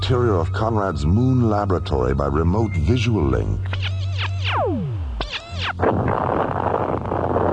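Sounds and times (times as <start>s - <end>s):
speech: 0.1s - 3.9s, 5.7s - 6.8s
falling electronic zaps: 3.7s - 7.4s.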